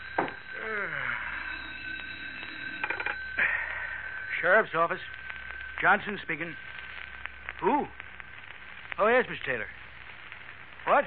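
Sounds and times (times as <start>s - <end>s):
old-fashioned telephone on a desk ringing with a shrill buzzing tone: 0.0s - 7.0s
sheriff yawning: 0.5s - 1.8s, 7.6s - 8.0s
speech: 4.4s - 5.2s, 5.8s - 6.7s, 7.6s - 8.0s, 9.0s - 9.8s, 10.8s - 11.0s.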